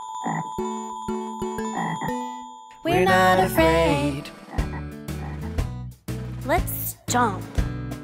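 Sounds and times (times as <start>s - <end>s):
steady tonal background: 0.0s - 5.1s
frog croaking: 0.2s - 0.6s, 1.6s - 2.3s, 4.4s - 5.6s
speech: 2.8s - 4.3s, 6.5s - 7.6s.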